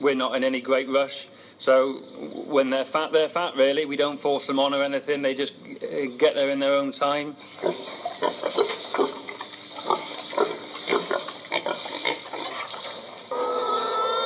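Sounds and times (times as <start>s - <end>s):
speech: 0.0s - 9.1s
farmyard hiss: 0.0s - 14.2s
pigs grunting on a farm: 7.5s - 14.2s.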